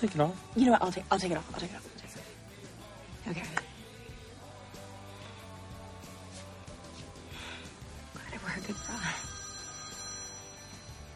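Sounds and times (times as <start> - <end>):
speech: 0.0 - 2.0, 3.3 - 3.7
phone with electronic ringtone ringing: 8.6 - 11.1.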